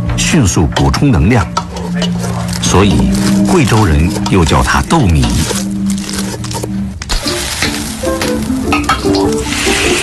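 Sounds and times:
speech: 0.3s - 5.6s
scraping and tossing strokes while stir-frying in a pan: 1.7s - 10.0s
lard and pickled cabbage sizzling in a pan: 7.1s - 10.0s.

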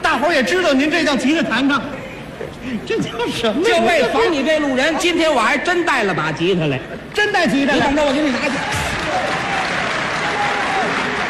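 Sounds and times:
speech: 0.2s - 2.0s, 2.6s - 9.3s
audience applauding at a comedic stage performance: 7.8s - 11.2s.

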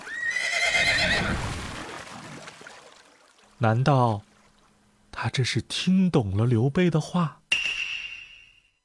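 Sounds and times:
horse whinnying: 0.0s - 1.4s
speech: 3.6s - 4.3s, 5.2s - 7.4s.

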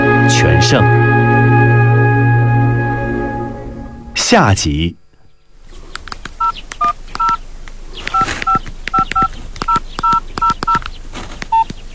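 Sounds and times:
low noise: 0.0s - 11.9s
speech: 0.4s - 1.1s, 4.3s - 5.0s
faint clicks: 5.1s - 11.8s
telephone keypad dual-tone dialing beeps: 6.4s - 7.4s, 8.1s - 10.8s.

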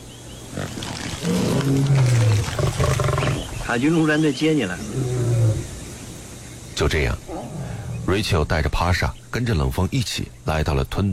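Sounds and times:
rough noise: 0.0s - 10.4s
lion roaring: 0.5s - 3.7s, 4.8s - 5.8s, 7.2s - 8.3s
speech: 3.7s - 5.0s, 6.8s - 7.3s, 8.1s - 11.1s.

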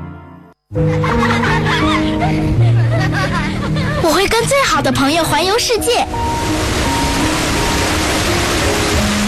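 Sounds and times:
laughter: 0.8s - 4.1s
speech: 4.8s - 6.7s
waterfall rushing: 6.0s - 9.2s.

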